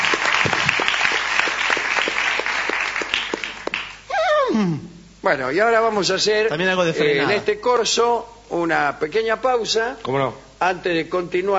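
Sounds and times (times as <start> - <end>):
audience applauding at a carnival parade: 0.0 - 4.1
speech: 4.6 - 11.5.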